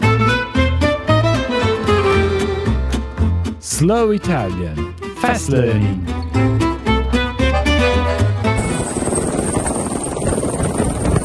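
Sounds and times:
music: 0.0 - 11.2
speech: 3.8 - 6.6
helicopter flying low over a sugar cane plantation in Queensland: 8.6 - 11.2.

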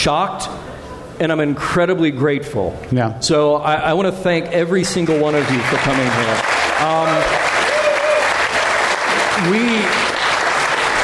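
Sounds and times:
speech: 0.0 - 7.5, 9.4 - 10.1
large audience applause: 4.9 - 11.0
faint voices and whoops: 7.2 - 8.6.

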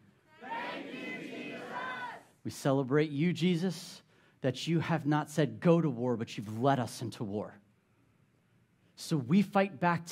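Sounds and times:
large crowd shouting in unison: 0.3 - 2.3
speech: 2.4 - 7.6, 9.0 - 10.1.

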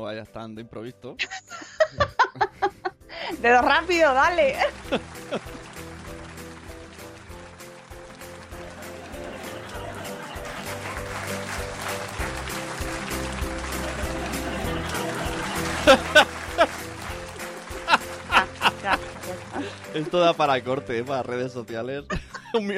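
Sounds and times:
speech: 0.0 - 5.5, 19.9 - 22.7
laughter: 1.3 - 3.0, 4.3 - 6.1, 8.5 - 20.1, 22.0 - 22.7
dense applause with rapid overlapping claps: 3.6 - 21.4.

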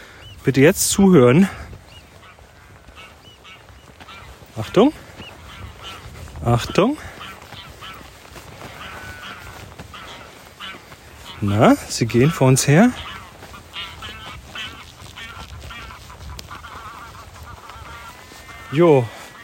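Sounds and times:
greylag geese honking on Pellworm: 0.0 - 19.4
speech: 0.4 - 1.7, 4.6 - 5.0, 6.4 - 7.1, 11.4 - 13.1, 18.7 - 19.2.

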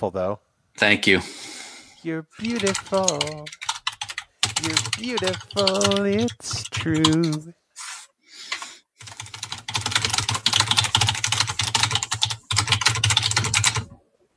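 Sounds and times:
speech: 0.0 - 3.7, 4.6 - 7.6
loud typing on a computer keyboard: 2.4 - 7.4, 8.5 - 14.0.

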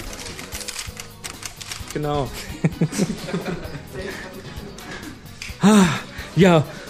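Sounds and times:
camera shutters clicking: 0.0 - 2.1
speech: 2.0 - 4.5, 5.6 - 6.8
laughter: 2.3 - 6.8.

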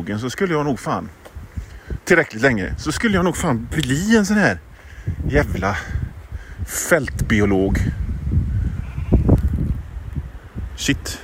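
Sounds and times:
speech: 0.0 - 1.3, 2.1 - 6.0, 6.7 - 8.0, 10.8 - 11.2
sheep bleating: 8.8 - 9.4.

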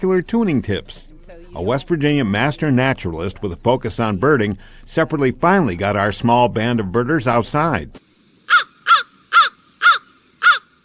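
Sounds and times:
speech: 0.0 - 8.7
crow cawing: 8.5 - 10.8.

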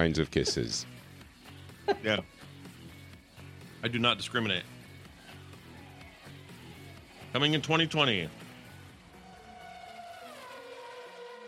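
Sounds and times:
speech: 0.0 - 1.0, 2.0 - 2.4, 3.8 - 4.8, 7.3 - 8.4
car engine passing by: 9.2 - 11.4.

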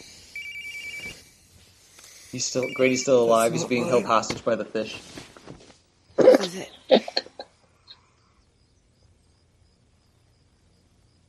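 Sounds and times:
quiet hiss: 0.0 - 11.2
phone ringtone chirping in bright electronic beeps: 0.3 - 1.2, 2.6 - 3.1
speech: 2.3 - 5.2, 6.5 - 6.8
laughter: 3.3 - 4.2, 6.5 - 7.5.

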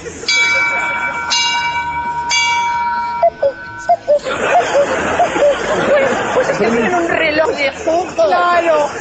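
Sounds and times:
laughter: 0.0 - 1.7, 3.2 - 9.0
murmur of voices: 0.0 - 9.0
clock bell chiming: 0.3 - 6.3
short high chirping tones: 1.1 - 4.3.

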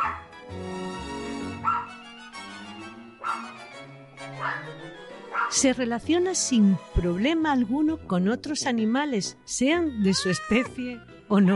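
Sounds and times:
small dog yipping and barking: 1.6 - 1.9, 3.2 - 3.4
speech: 5.5 - 11.5.

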